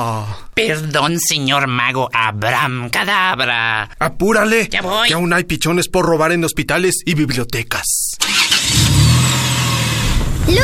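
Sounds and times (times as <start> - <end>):
speech: 0.0 - 8.8
ice cream van engine cranking and catching: 8.2 - 10.6.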